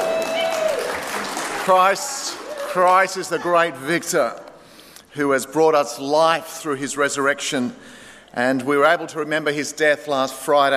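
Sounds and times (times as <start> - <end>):
church audience cheering and applauding: 0.0 - 3.8
speech: 1.7 - 4.4, 5.2 - 10.7.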